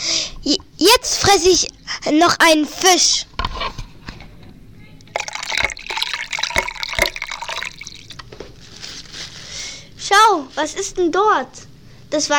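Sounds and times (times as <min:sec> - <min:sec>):
speech: 0:00.5 - 0:03.3, 0:10.2 - 0:12.3
water splashing from someone jumping in: 0:05.1 - 0:08.3.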